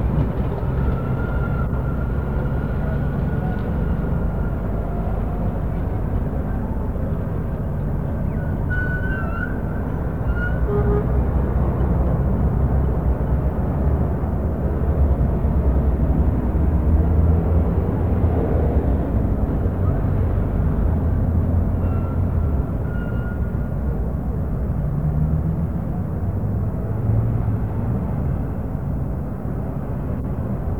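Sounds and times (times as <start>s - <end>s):
city traffic with buses rumbling, heard from a third-floor hotel room: 0.0s - 30.7s
faint car horns in city traffic: 10.3s - 11.3s.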